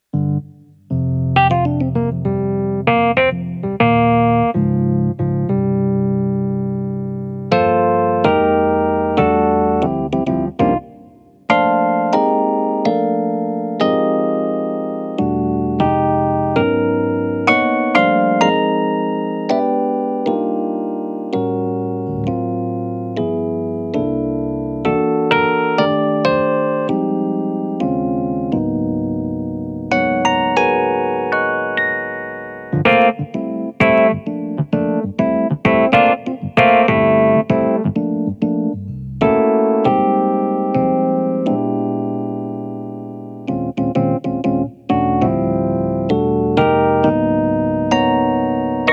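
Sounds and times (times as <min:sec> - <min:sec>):
Dyno electric piano: 0:00.0 - 0:48.9.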